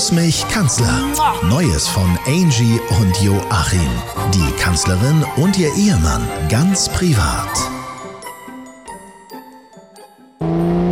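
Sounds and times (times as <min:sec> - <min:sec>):
speech: 0:00.1 - 0:07.8
tinkling musical jingle: 0:07.9 - 0:10.4
car engine roaring while accelerating at full throttle: 0:10.4 - 0:10.9.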